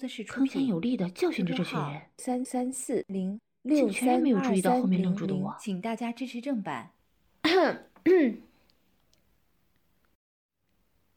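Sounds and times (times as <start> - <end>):
speech: 0.0 - 8.5
person clearing throat with dry voiced coughs: 7.4 - 8.5.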